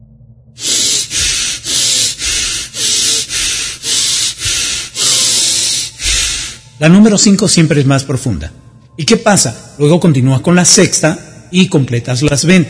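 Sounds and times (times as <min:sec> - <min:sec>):
forceful breathing through the nose in a connected-breath exercise: 0:00.6 - 0:06.8
speech: 0:06.8 - 0:12.6.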